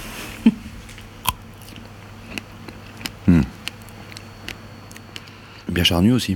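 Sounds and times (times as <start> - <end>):
crisp bites into a crunchy juicy Dream fruit: 0.9 - 5.4
chewing crunchy fruit: 0.9 - 5.7
speech: 5.8 - 6.3.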